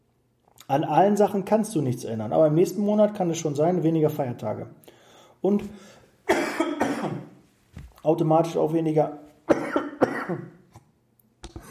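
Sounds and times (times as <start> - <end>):
speech: 0.7 - 6.5, 8.0 - 9.2, 10.3 - 10.6
person coughing: 6.3 - 7.3, 9.5 - 10.6.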